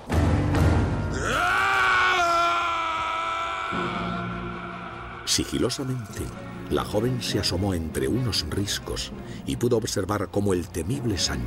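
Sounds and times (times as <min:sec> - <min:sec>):
distant long scream: 0:01.1 - 0:06.1
speech: 0:05.4 - 0:11.4.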